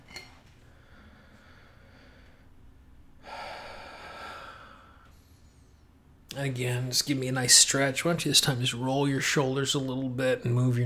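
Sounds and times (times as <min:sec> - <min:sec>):
steady low noise: 0:00.0 - 0:10.8
slow deep breath: 0:00.6 - 0:02.6, 0:03.2 - 0:06.0
speech: 0:06.4 - 0:10.8.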